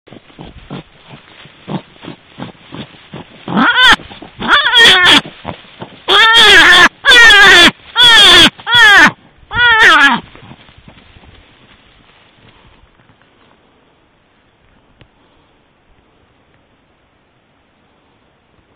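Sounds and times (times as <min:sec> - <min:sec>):
wounded hare screaming: 0:03.5 - 0:05.4, 0:06.0 - 0:10.3.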